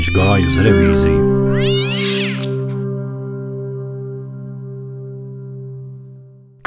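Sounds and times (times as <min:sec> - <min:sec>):
speech: 0:00.0 - 0:01.9
tomcat howling meow: 0:01.5 - 0:02.8.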